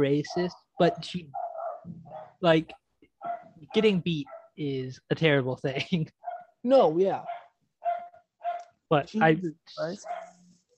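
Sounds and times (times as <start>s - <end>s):
speech: 0.0s - 2.8s, 3.7s - 7.4s, 8.9s - 10.2s
dog barking: 0.2s - 2.4s, 3.2s - 4.6s, 6.2s - 6.6s, 7.2s - 8.8s, 10.0s - 10.6s.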